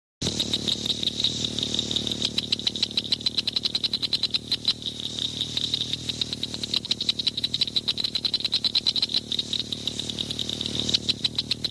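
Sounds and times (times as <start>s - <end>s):
Blanchard's cricket frog calling: 0.2s - 11.7s.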